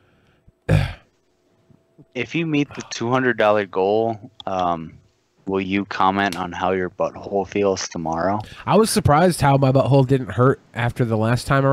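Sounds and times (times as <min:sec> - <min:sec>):
harsh rasping throat clearing: 0:00.7 - 0:01.0
speech: 0:02.0 - 0:11.7.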